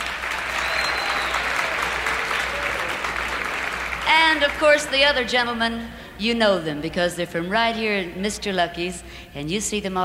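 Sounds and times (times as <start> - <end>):
sustained applause from a sizable audience welcoming musicians: 0.0 - 5.0
speech: 4.3 - 10.0.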